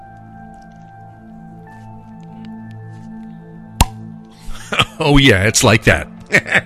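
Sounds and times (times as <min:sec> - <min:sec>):
Belgian pale ale beer bottle opening pop: 0:03.8 - 0:04.1
speech: 0:05.0 - 0:06.6.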